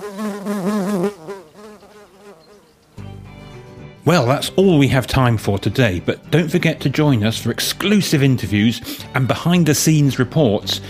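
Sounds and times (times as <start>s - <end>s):
bees buzzing: 0.0s - 3.0s
speech: 4.1s - 10.8s.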